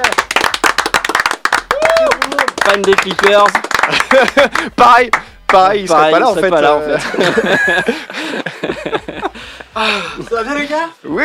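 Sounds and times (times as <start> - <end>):
crowd applauding: 0.0 - 5.7
person whooping and cheering: 1.6 - 2.5
speech: 2.8 - 9.0, 9.8 - 11.2
laughter: 3.8 - 4.8, 6.8 - 10.5.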